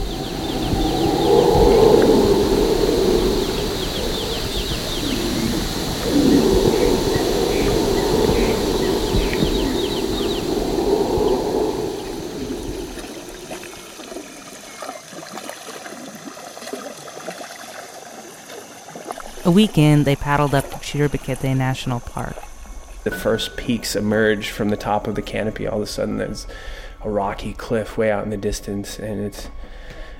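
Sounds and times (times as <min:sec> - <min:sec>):
bird and animal calls in a jungle at night: 0:00.0 - 0:15.2
flowing water in a jungle: 0:00.0 - 0:23.2
speech: 0:19.5 - 0:29.7.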